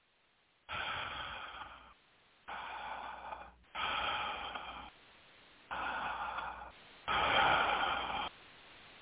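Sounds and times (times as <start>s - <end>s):
heavy breathing: 0.6s - 5.0s, 5.6s - 8.4s.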